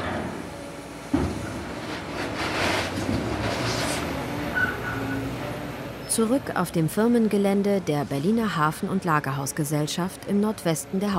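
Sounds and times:
open freight wagons loaded with gravel rumbling at a rail yard in Berlin: 0.0 - 11.1
speech: 6.2 - 11.1.

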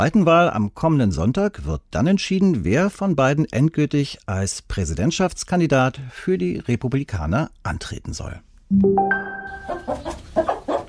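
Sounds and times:
speech: 0.0 - 10.5
hens clucking in a barn: 9.6 - 10.8.

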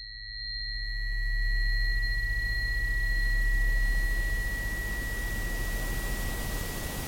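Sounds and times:
low hum: 0.0 - 7.0
steady hiss of broadband noise: 2.7 - 7.0.

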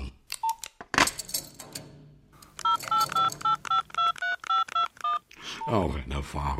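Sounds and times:
telephone keypad tones as a number is dialed: 2.4 - 5.8
speech: 5.6 - 6.5.

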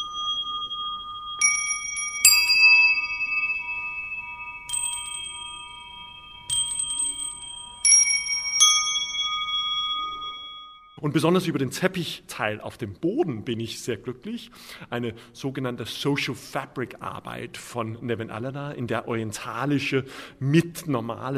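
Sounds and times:
glockenspiel playing slow bright metallic notes: 0.0 - 11.0
speech: 11.0 - 21.3.

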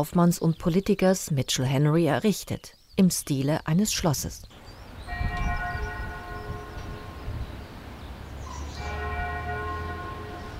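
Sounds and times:
speech: 0.0 - 4.6
faint birds: 0.0 - 10.5
church bell tolling for mass: 5.1 - 7.3, 8.6 - 10.5.

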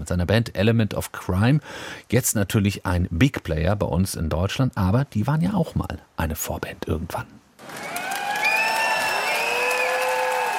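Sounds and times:
speech: 0.0 - 8.0
large concert crowd cheering: 7.6 - 10.5.

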